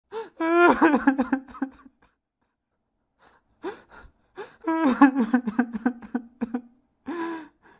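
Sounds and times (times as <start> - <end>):
25-year-old man crying: 0.4 - 2.0, 4.6 - 6.7.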